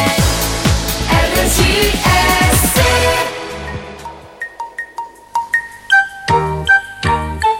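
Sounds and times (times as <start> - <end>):
gentle morning jingle melody: 0.2 - 7.5
bright bell-like notes: 3.3 - 7.5.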